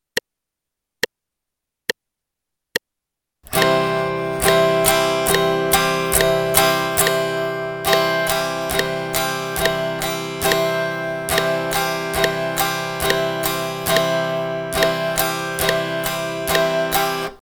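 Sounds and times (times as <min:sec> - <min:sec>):
guitar strumming a C chord in eighth notes: 0:03.5 - 0:17.4.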